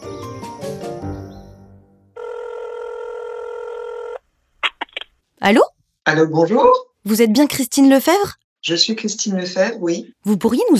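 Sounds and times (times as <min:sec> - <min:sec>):
music: 0:00.0 - 0:02.1
telephone ringback tone for an outgoing call: 0:02.2 - 0:04.2
speech: 0:05.4 - 0:10.7.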